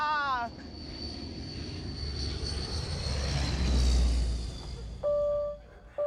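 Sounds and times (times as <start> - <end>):
big jet aircraft roaring overhead with turbine whine: 0.0 - 6.0.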